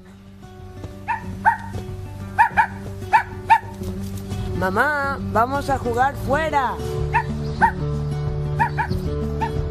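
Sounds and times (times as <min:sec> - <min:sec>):
small dog giving short high-pitched barks: 0:01.0 - 0:03.8, 0:07.1 - 0:07.8, 0:08.6 - 0:09.6
speech: 0:04.6 - 0:07.0.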